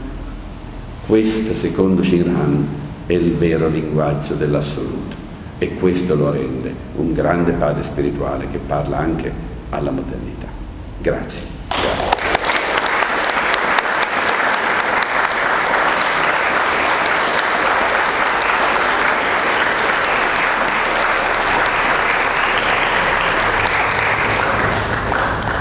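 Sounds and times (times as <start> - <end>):
speech: 1.1 - 11.8
audience applause: 11.7 - 25.6.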